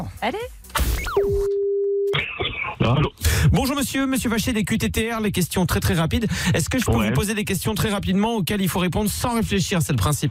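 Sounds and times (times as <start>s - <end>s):
speech: 0.0s - 1.3s, 2.9s - 10.2s
telephone line tone as a phone call is placed: 1.4s - 2.2s.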